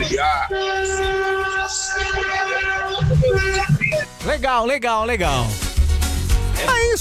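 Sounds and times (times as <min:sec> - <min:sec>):
many car horns honking together in a collective horn-honking event: 0:00.0 - 0:03.7
speech: 0:04.4 - 0:05.6, 0:06.6 - 0:06.9.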